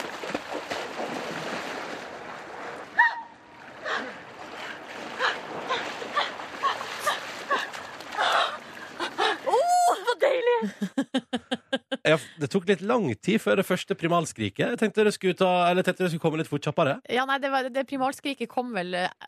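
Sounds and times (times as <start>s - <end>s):
breaking surf waves washing around: 0.0s - 9.7s
splashing water as someone runs from the beach through breaking surf: 0.0s - 10.5s
laughter: 10.5s - 12.5s
speech: 12.1s - 19.2s.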